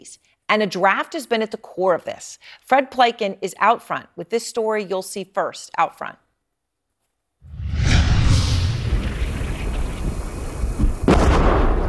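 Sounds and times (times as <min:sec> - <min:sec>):
speech: 0:00.0 - 0:06.2
sharp blast on a Ukrainian front line: 0:07.5 - 0:10.2
loud explosion on a Ukrainian front line: 0:07.5 - 0:11.8.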